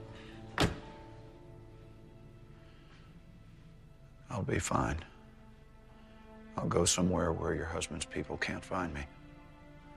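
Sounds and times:
car driver door closing: 0:00.6 - 0:01.0
speech: 0:04.3 - 0:05.1, 0:06.6 - 0:09.1.

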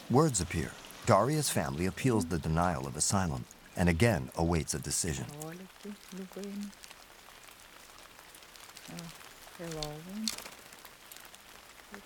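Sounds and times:
steady rain falling outside: 0:00.0 - 0:12.0
faint voices: 0:00.1 - 0:05.3
speech: 0:00.1 - 0:06.9, 0:08.9 - 0:10.5.

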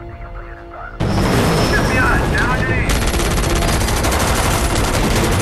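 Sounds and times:
gunfire from a helicopter firing on a sniper: 0:01.1 - 0:05.4.

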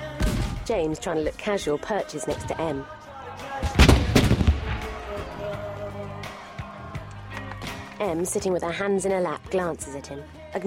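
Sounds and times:
speech: 0:00.7 - 0:03.0, 0:08.0 - 0:10.6
fireworks exploding in the night sky at a Bastille Day display: 0:03.6 - 0:05.6.

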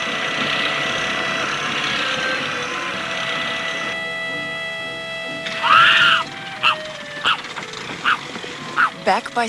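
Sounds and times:
small boat motor puttering at idle: 0:00.0 - 0:09.4
short high-pitched calls: 0:05.5 - 0:09.0
speech: 0:09.1 - 0:09.4.

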